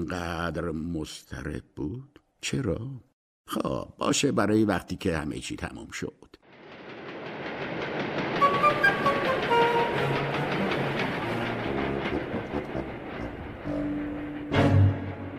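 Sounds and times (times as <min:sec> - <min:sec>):
speech: 0:00.0 - 0:06.4
train running on rails: 0:06.5 - 0:15.3.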